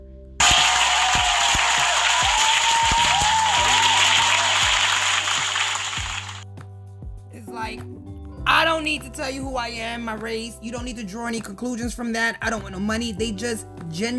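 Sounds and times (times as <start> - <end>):
crowd clapping: 0.4 - 6.4
speech: 9.2 - 14.1.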